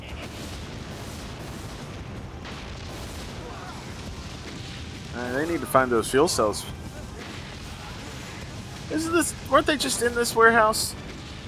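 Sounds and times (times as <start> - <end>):
explosion sound effects from played footage: 0.0 - 11.4
speech: 5.2 - 6.8, 8.9 - 11.0.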